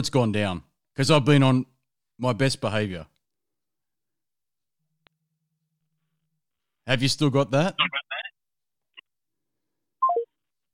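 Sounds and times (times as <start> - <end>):
speech: 0.0 - 3.1, 6.9 - 8.0
phone electronic tones for incoming call: 10.0 - 10.3.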